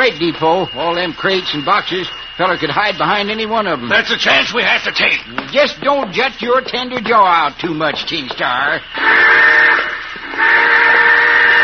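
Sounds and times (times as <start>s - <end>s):
speech: 0.0s - 10.8s
steam train whistle blowing a shrill chord: 8.9s - 11.6s.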